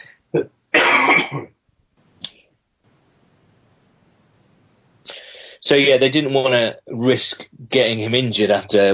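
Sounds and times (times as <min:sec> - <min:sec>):
person coughing: 0:00.4 - 0:01.6
speech: 0:05.7 - 0:08.9.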